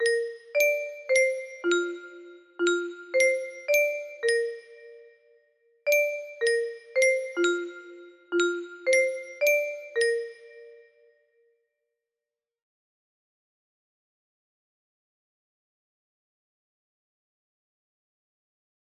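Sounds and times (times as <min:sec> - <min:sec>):
music box melody: 0:00.0 - 0:05.1, 0:05.9 - 0:10.9.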